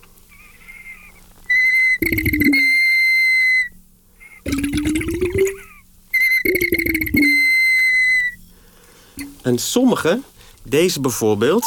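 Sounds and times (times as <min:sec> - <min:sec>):
ceramic whistling vessel whistling: 0:01.5 - 0:08.4
speech: 0:09.5 - 0:11.6.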